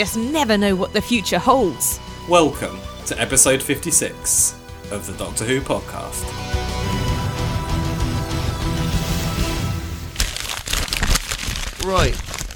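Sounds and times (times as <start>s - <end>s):
speech: 0.0s - 6.7s, 11.8s - 12.4s
steady music: 0.0s - 10.4s
wrapping paper being torn and crumpled: 10.2s - 12.5s.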